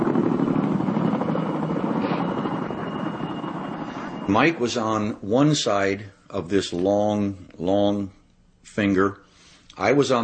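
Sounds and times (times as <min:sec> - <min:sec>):
resupply helicopter engines roaring with rotor throb: 0:00.0 - 0:05.2
speech: 0:04.3 - 0:09.2, 0:09.8 - 0:10.2.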